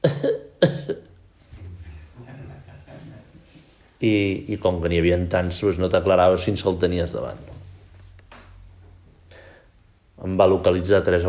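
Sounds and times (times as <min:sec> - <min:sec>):
sharp coughs: 0:00.0 - 0:01.1
laughter: 0:01.6 - 0:03.8
speech: 0:04.0 - 0:07.5, 0:10.4 - 0:11.2.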